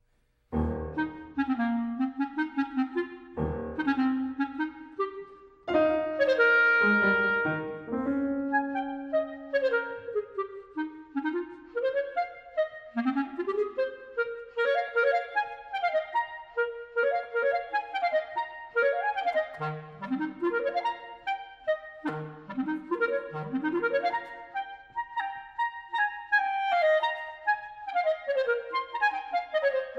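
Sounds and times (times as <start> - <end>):
piano playing an allegretto sonata movement: 0.5 - 11.4
clarinet playing an allegretto sonata movement: 0.5 - 29.9.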